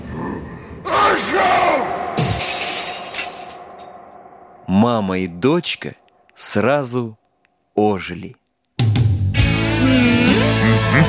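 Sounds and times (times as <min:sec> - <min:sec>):
speech: 0:01.2 - 0:02.0, 0:04.7 - 0:07.2, 0:07.8 - 0:08.4
bright doll fragments ringing and scattering: 0:02.2 - 0:04.0
person wailing and shouting: 0:09.7 - 0:11.0.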